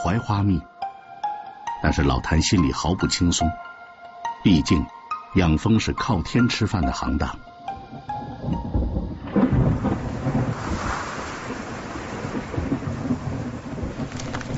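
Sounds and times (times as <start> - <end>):
speech: 0.0 - 0.7, 1.8 - 3.7, 4.4 - 7.5
strong wind: 7.8 - 14.5
steady rain: 8.2 - 14.5.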